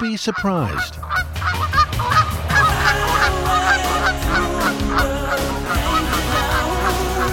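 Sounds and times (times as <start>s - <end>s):
speech: 0.0s - 2.3s
flock of Canada geese honking: 0.0s - 7.3s.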